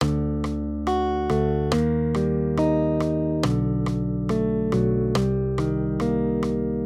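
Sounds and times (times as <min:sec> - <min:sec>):
guitar accompaniment playing major triads: 0:00.0 - 0:06.8.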